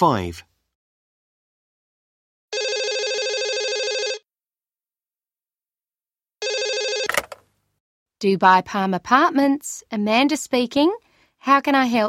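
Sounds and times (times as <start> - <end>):
speech: 0.0 - 0.5, 8.2 - 12.0
telephone at a holiday apartment rental office ringing: 2.5 - 4.3, 6.4 - 7.4
clatter of a telephone receiver being picked up: 7.1 - 7.4.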